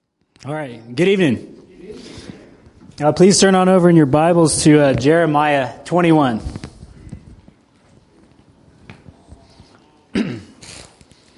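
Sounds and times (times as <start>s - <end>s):
speech: 0.4s - 1.6s, 3.0s - 6.6s
single loud harsh cough: 10.1s - 10.8s
brief rough throat clearing: 10.1s - 11.0s.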